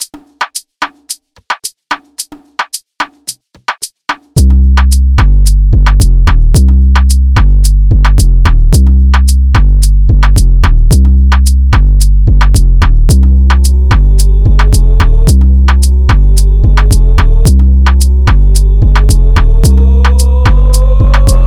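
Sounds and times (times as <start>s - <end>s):
upbeat Latin Caribbean hip hop dance beat in C minor: 0.0s - 21.4s.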